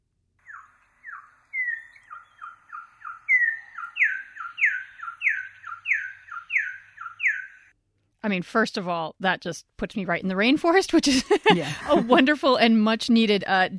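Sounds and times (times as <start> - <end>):
male Venezuelan troupial song: 0.4 - 7.7
speech: 8.2 - 13.7
laughter: 11.0 - 12.4.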